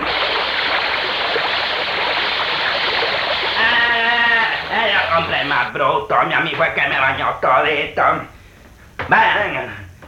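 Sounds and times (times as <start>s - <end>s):
water splashing and spraying against a dirty window: 0.0s - 4.8s
higher voice-like tone: 3.6s - 7.3s
speech: 5.4s - 8.4s, 9.1s - 9.8s.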